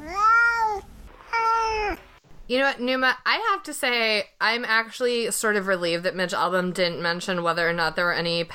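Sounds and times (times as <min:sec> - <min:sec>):
cat meowing: 0:00.0 - 0:02.1
speech: 0:02.5 - 0:08.5.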